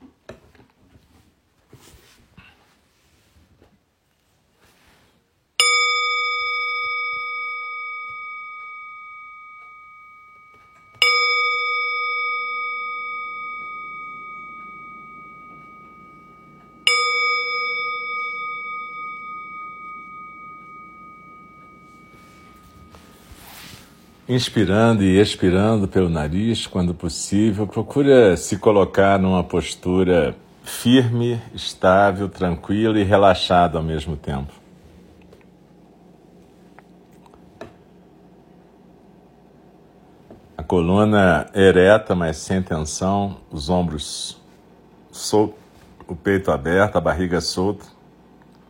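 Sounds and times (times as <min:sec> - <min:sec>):
meditation bell struck: 0:05.6 - 0:26.7
speech: 0:24.3 - 0:34.6, 0:40.8 - 0:44.4, 0:45.2 - 0:48.0.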